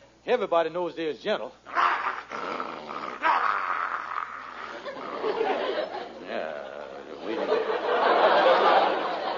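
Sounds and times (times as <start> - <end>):
speech: 0.3 - 2.6
German shepherd dog growling: 1.7 - 5.8
laughter: 4.6 - 9.3.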